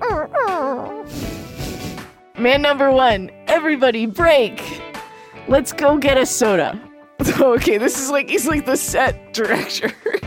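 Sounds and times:
toy dog whimpering: 0:00.0 - 0:01.5
speech: 0:02.4 - 0:04.8, 0:05.5 - 0:10.2.

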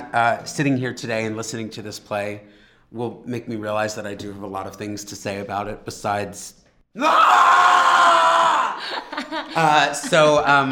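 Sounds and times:
speech: 0:00.1 - 0:07.6, 0:09.3 - 0:10.6
loud sustained scream: 0:07.0 - 0:09.0.

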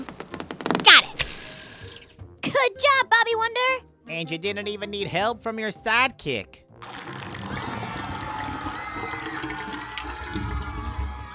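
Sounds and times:
speech: 0:02.5 - 0:06.9
lake water draining away: 0:06.8 - 0:11.3.

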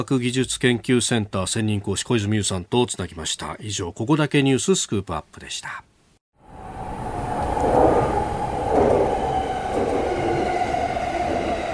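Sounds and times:
speech: 0:00.0 - 0:05.9
Yamanote Line commuter train in motion heard from inside the car: 0:06.4 - 0:11.7.

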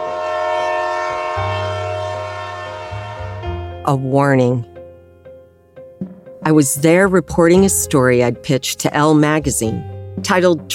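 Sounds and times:
coal train horn blowing a long sustained chord: 0:00.0 - 0:04.7
speech: 0:03.9 - 0:04.7, 0:06.4 - 0:10.7.

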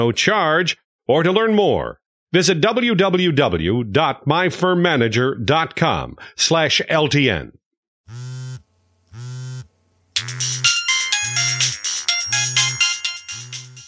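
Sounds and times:
speech: 0:00.0 - 0:08.4, 0:10.2 - 0:10.6
phone ringtone buzzing tone pulses: 0:08.1 - 0:13.8
bright jangling electronic phone ringtone melody: 0:10.2 - 0:13.8.

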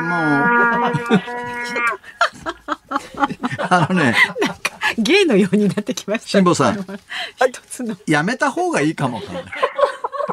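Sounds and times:
amateur trumpet playing a wavering note: 0:00.0 - 0:02.0
people laughing: 0:00.0 - 0:07.1, 0:09.0 - 0:10.3
speech: 0:00.1 - 0:02.2, 0:03.7 - 0:04.4, 0:05.0 - 0:09.9.

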